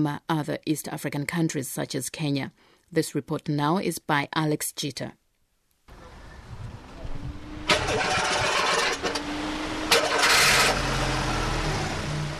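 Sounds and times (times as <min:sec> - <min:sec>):
speech: 0:00.0 - 0:05.2
engine of a homemade car built from scrap metal in Uganda starting: 0:05.9 - 0:12.3.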